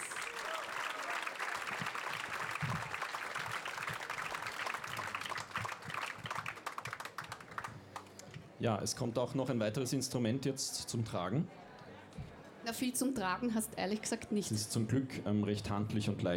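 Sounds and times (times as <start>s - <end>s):
audience applause: 0.0s - 8.2s
speech: 8.6s - 11.6s, 12.7s - 16.3s.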